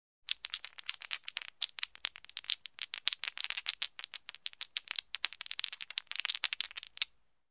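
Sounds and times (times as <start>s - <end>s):
dice shuffled in hand: 0.3s - 7.1s.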